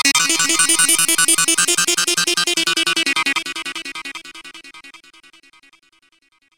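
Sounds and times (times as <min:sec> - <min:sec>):
Goa trance synth arpeggio: 0:00.2 - 0:05.1.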